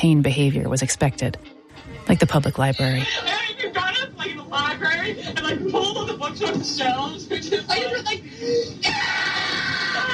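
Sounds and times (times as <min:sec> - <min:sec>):
speech: 0:00.0 - 0:03.5, 0:04.3 - 0:10.1
laughter: 0:04.9 - 0:10.1
young girl screaming on an old tape recording: 0:08.8 - 0:10.1.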